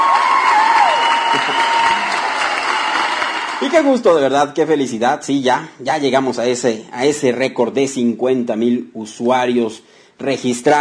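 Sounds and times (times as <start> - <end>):
steady dense crowd applause: 0.0 - 4.0
speech: 3.6 - 10.7.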